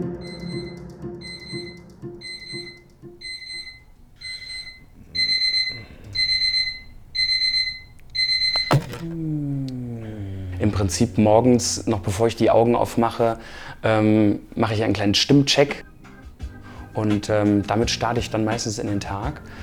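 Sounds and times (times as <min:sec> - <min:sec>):
alarm clock ringing with high electronic beeps: 0:00.2 - 0:09.1
thump cutting off alarm clock: 0:08.6 - 0:09.2
speech: 0:10.8 - 0:15.8, 0:17.0 - 0:19.6.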